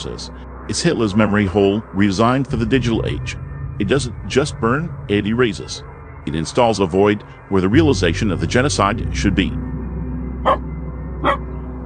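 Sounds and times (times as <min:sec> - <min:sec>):
speech: 0:00.0 - 0:09.7, 0:10.4 - 0:11.4
low steady hum: 0:00.0 - 0:11.8
dog barking: 0:10.4 - 0:10.6, 0:11.2 - 0:11.5.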